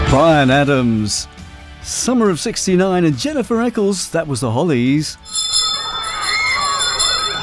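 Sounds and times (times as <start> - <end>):
speech: 0.1 - 5.5
school bell ringing: 5.2 - 7.4.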